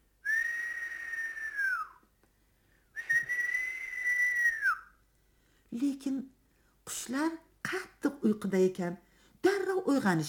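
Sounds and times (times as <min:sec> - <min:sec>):
soft whistling: 0:00.2 - 0:02.1, 0:02.9 - 0:05.0
speech: 0:05.7 - 0:06.4, 0:07.1 - 0:09.1, 0:09.8 - 0:10.2.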